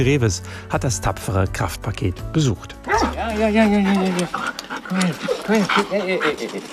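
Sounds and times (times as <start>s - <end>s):
speech: 0.0s - 6.7s
excited female husky whining and yelping at an animal shelter in Korbach: 2.9s - 6.3s
excited female husky panting at an animal shelter in Korbach: 2.9s - 6.7s.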